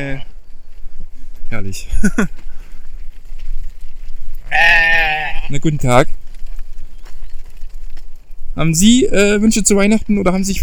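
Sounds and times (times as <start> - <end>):
speech: 0.0 - 0.3, 1.5 - 2.5, 5.5 - 6.2, 8.6 - 10.6
laughter: 1.9 - 2.4
goats bleating outdoors: 4.4 - 5.8.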